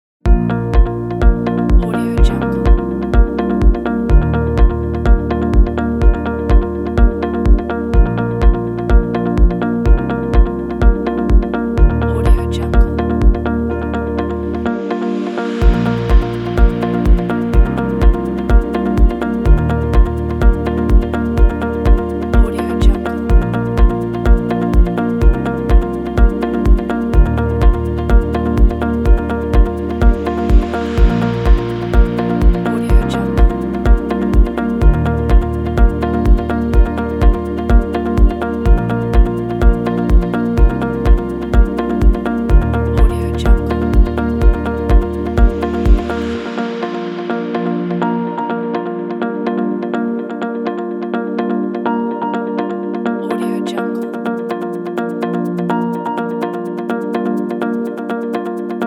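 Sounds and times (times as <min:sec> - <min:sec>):
corporate background music: 0:00.3 - 0:58.8.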